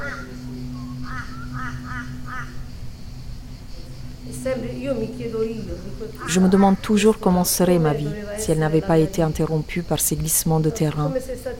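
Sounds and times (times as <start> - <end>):
crows cawing: 0.0 - 3.0, 6.1 - 7.0
steady low hum: 0.0 - 11.2
rough outdoor noise: 0.0 - 11.5
speech: 4.2 - 11.5.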